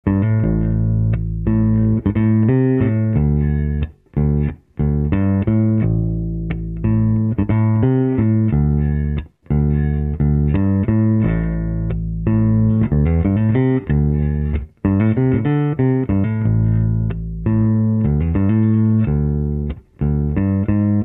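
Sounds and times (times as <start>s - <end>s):
jazz bass guitar riffing through a 15-inch driver amplifier: 0.0s - 21.0s.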